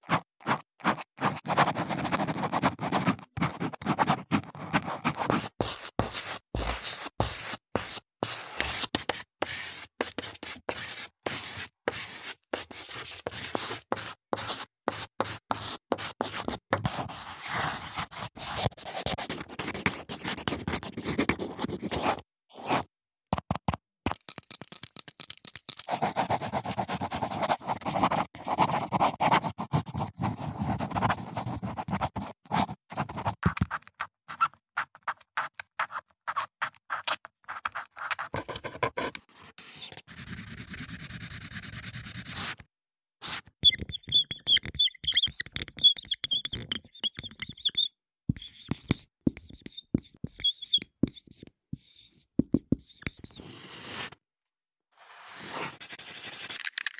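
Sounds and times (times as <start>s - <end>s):
handwriting: 0.0s - 22.9s, 25.8s - 42.6s, 43.2s - 54.2s, 55.0s - 56.7s.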